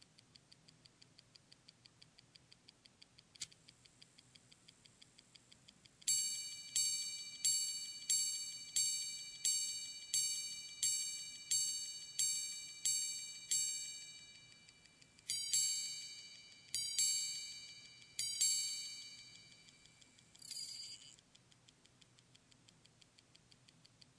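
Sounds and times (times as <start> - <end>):
grande sonnerie clock chiming: 6.1 - 21.2.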